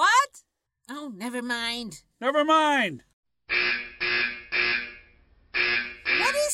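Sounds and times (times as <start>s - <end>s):
speech: 1.1s - 3.7s
fire alarm blaring in a building: 3.5s - 6.5s.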